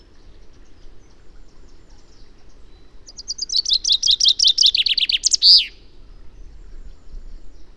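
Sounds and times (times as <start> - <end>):
quiet low background noise: 0.0 - 7.7
common chaffinch Fringilla coelebs song: 1.6 - 5.9.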